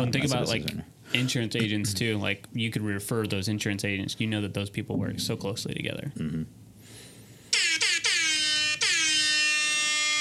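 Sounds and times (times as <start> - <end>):
speech: 0.0 - 6.5
loud air horn blasts: 7.5 - 10.2.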